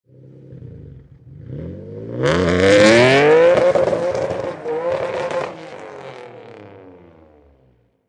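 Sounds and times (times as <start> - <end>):
Nissan 350Z automatic high performance car exhaust on takeoff: 0.1 - 7.8.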